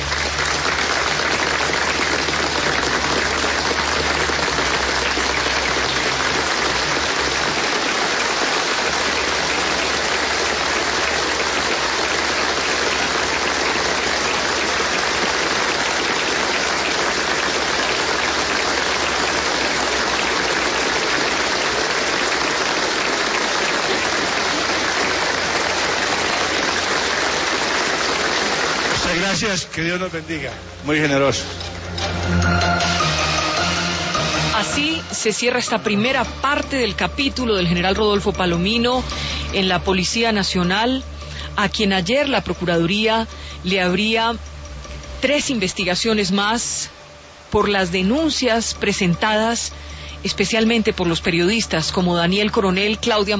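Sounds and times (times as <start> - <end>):
large audience applauding: 0.0 - 30.4, 31.7 - 37.8, 47.8 - 53.3
speech: 29.8 - 31.6, 34.8 - 44.5, 45.2 - 53.3.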